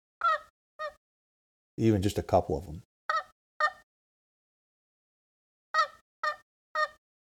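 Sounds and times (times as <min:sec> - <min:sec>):
soft turkey yelps on a tree call: 0:00.2 - 0:01.0, 0:03.1 - 0:03.8, 0:05.8 - 0:07.0
speech: 0:01.8 - 0:02.9.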